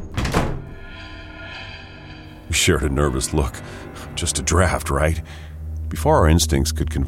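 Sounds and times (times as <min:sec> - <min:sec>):
several doors slamming shut together: 0:00.0 - 0:00.7
speech: 0:02.5 - 0:07.0.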